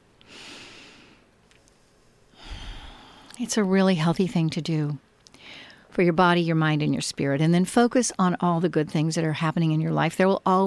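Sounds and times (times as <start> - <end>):
slow deep breath drawn in: 0.2 - 3.4, 5.4 - 5.9
speech: 3.4 - 5.1, 6.0 - 10.6.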